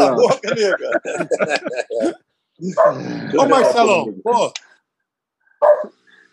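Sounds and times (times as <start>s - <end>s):
laughter: 0.0s - 2.2s
speech: 0.0s - 4.7s, 5.6s - 6.0s
dog barking: 2.8s - 4.0s, 5.6s - 6.0s.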